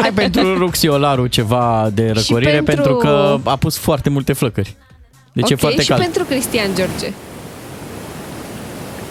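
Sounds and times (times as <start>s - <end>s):
laughter: 0.0s - 1.0s
speech: 0.0s - 7.3s
waterfall rush of falling water: 5.6s - 9.0s.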